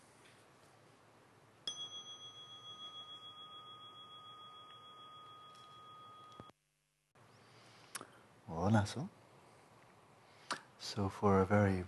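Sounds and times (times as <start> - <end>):
meditation chime ringing at the end of a dream yoga practice session: 1.6 - 6.6
speech: 8.6 - 9.2, 10.9 - 11.8.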